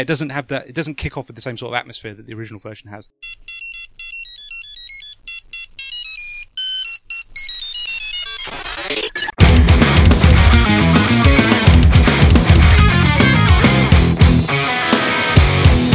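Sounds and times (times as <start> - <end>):
speech: 0.0 - 3.5
song riff played as a mobile phone ringtone: 3.2 - 9.4
fuller, louder burst of music: 7.5 - 15.9.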